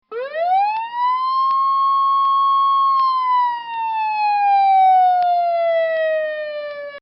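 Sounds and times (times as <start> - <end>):
electronic Coast Guard boat sirens: 0.1 - 7.0.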